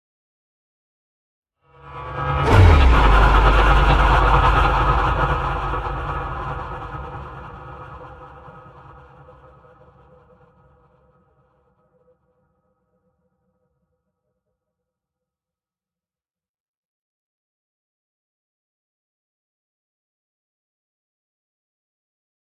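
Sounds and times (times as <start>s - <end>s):
impacts: 2.2s - 9.0s.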